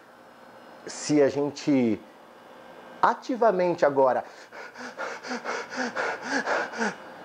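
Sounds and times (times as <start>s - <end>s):
speech: 0.8s - 2.1s, 3.0s - 7.0s
deliberately rapid forceful breathing: 4.2s - 7.2s.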